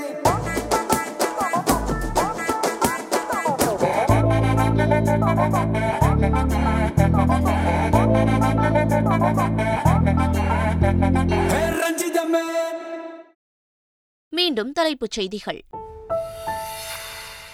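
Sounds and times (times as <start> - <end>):
Tamil film song with male singer: 0.0 - 13.3
speech: 5.2 - 9.9, 10.8 - 12.8, 14.4 - 15.8.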